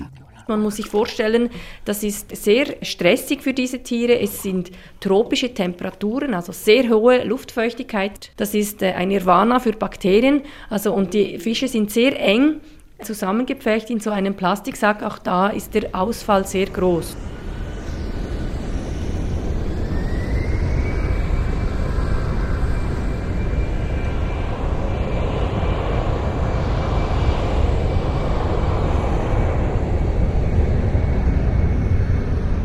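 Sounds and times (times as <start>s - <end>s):
speech: 0.5s - 17.3s
airplane engine roaring with a low rumble and rising whine: 15.3s - 32.6s.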